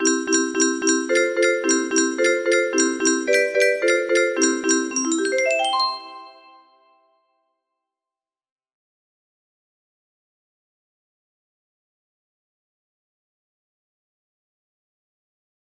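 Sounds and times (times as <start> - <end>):
12 bar blues music: 0.0 - 6.3.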